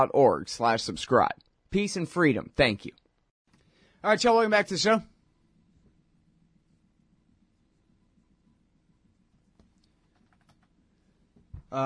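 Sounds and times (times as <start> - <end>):
speech: 0.0 - 3.0, 4.0 - 5.1
typing on a computer keyboard: 9.6 - 10.8.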